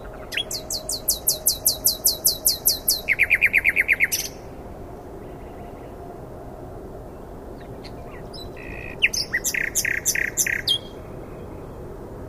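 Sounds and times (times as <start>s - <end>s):
common nightingale Luscinia megarhynchos singing: 0.0s - 4.5s, 7.6s - 11.5s.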